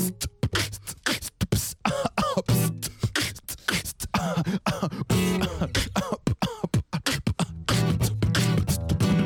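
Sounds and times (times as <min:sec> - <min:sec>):
person beatboxing: 0:00.0 - 0:09.2
person coughing: 0:01.9 - 0:02.5, 0:04.2 - 0:07.6.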